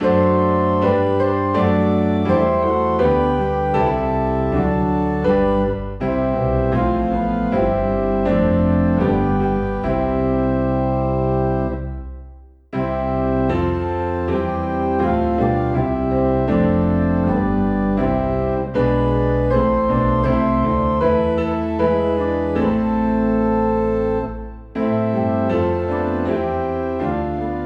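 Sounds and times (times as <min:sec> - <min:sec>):
organ in C: 0:00.0 - 0:12.1, 0:12.8 - 0:27.6
piano in C: 0:00.0 - 0:27.6.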